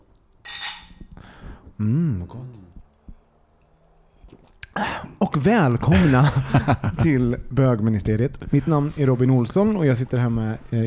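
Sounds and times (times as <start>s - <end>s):
glasses clinking in a toast: 0.4s - 1.1s
speech: 1.8s - 2.8s, 4.8s - 10.8s
laughter: 5.8s - 7.4s.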